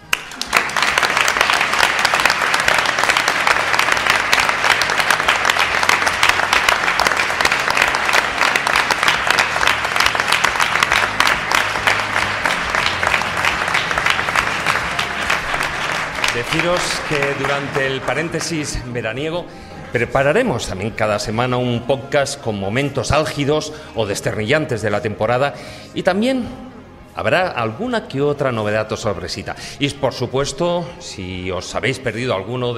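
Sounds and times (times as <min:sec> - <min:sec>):
sustained applause from a large crowd: 0:00.0 - 0:19.1
speech: 0:16.6 - 0:32.7.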